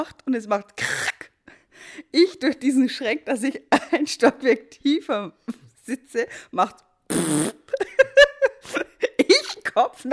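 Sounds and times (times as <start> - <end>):
speech: 0.0 - 1.0, 2.0 - 7.9, 9.8 - 10.1
voice blowing a raspberry imitating a fart: 7.1 - 7.8
laughter: 7.8 - 9.5.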